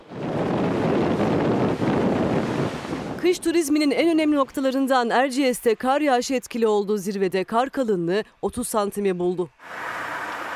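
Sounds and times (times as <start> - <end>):
surf: 0.0 - 3.3
strong wind roaring across the microphone: 0.0 - 4.8
speech: 3.3 - 10.0.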